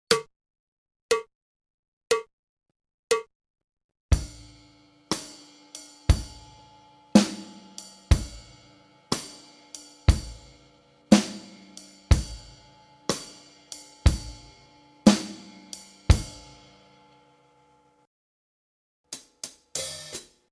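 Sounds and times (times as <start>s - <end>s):
drum kit practice: 4.1s - 17.2s, 19.1s - 20.4s.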